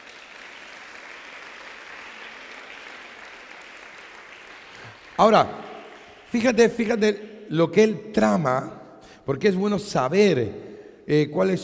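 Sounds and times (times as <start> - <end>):
audience applauding during a church sermon: 0.0 - 7.0
speech: 5.2 - 5.6, 6.3 - 11.6.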